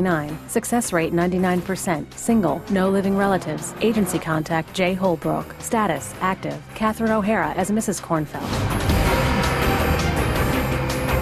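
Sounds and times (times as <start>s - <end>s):
speech: 0.0s - 9.0s
Ferrari sports car engine roaring at high revs: 1.0s - 11.2s.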